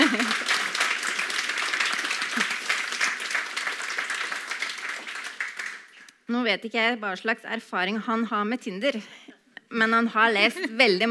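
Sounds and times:
group applause: 0.0s - 6.1s
speech: 6.4s - 11.0s.

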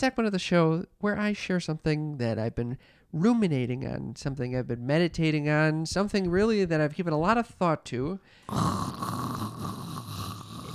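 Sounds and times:
speech: 0.0s - 9.8s
person snoring: 8.4s - 10.7s.

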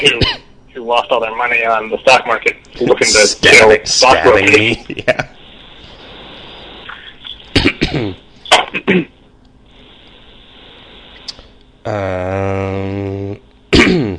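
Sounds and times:
speech: 0.0s - 5.4s, 7.7s - 9.1s, 11.8s - 13.4s
person coughing: 0.1s - 0.5s, 7.5s - 9.2s, 13.7s - 14.1s
voiced throat clearing: 7.5s - 9.2s, 13.7s - 14.1s.

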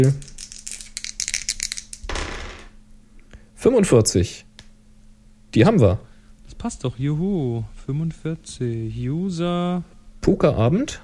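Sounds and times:
speech: 0.0s - 0.3s, 3.6s - 4.4s, 5.5s - 11.0s
die being rolled: 0.0s - 2.8s.

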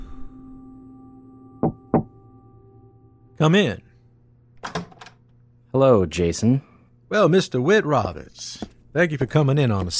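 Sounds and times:
low steady hum: 0.0s - 9.9s
sharp knocks on a door: 1.6s - 2.1s
speech: 3.4s - 3.9s, 5.7s - 9.9s.

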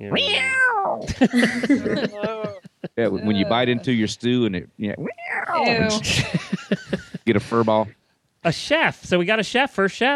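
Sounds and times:
cat meowing: 0.0s - 1.0s
speech: 0.0s - 10.1s
laughter: 1.0s - 4.1s, 5.7s - 7.8s.

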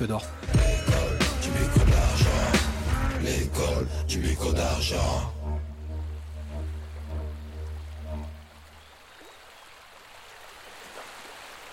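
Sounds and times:
speech: 0.0s - 0.7s, 3.2s - 5.4s
low humming tone: 0.9s - 8.8s
sea waves: 2.5s - 11.7s.

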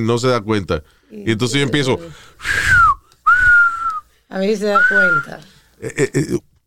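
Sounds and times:
speech: 0.0s - 2.8s, 4.3s - 6.5s
sharp high-pitched human whistles gliding downward: 2.4s - 4.1s, 4.7s - 5.4s.

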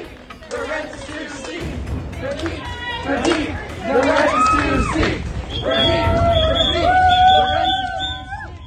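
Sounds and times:
crowd of students chanting and shouting at a protest over stolen wages: 0.0s - 8.6s
students clapping: 0.0s - 8.6s
students blowing shrill whistle blasts: 5.4s - 8.6s.

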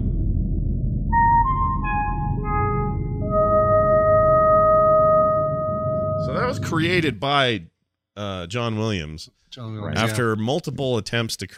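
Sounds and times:
low rumbling background: 0.0s - 7.8s
film motif of synthesized electronic tones: 1.0s - 7.2s
speech: 6.7s - 11.5s.

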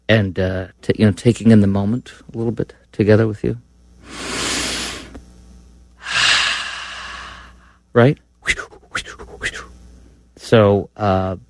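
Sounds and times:
speech: 0.1s - 4.4s, 8.0s - 9.1s, 10.5s - 11.4s
deep breathing: 4.0s - 5.2s, 6.0s - 7.9s.

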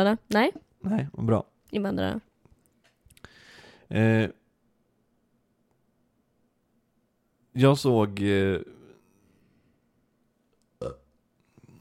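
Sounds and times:
speech: 0.0s - 2.3s, 3.9s - 4.4s, 7.6s - 8.8s, 10.8s - 11.0s
loud low rumbling burp: 10.8s - 11.2s.

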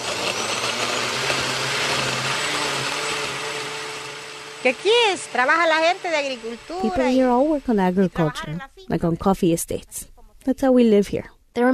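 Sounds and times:
old clunky blender mixing salsa in a house kitchen: 0.0s - 8.6s
speech: 4.6s - 11.7s.

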